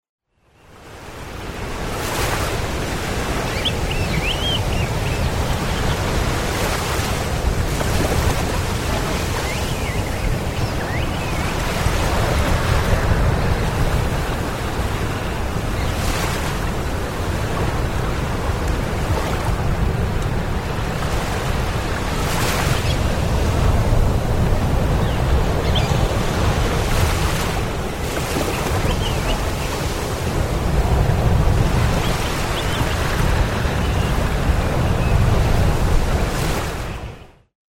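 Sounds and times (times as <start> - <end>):
big surf: 0.8 - 37.1.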